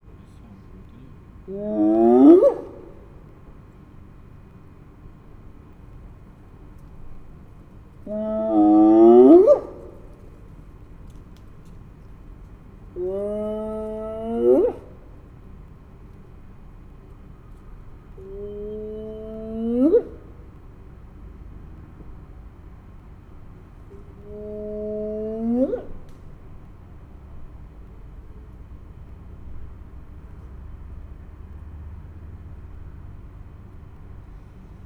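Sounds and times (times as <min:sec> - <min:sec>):
male spotted hyena calling: 0:01.4 - 0:03.4, 0:08.0 - 0:10.4, 0:12.8 - 0:15.4, 0:18.0 - 0:20.7, 0:23.9 - 0:26.5.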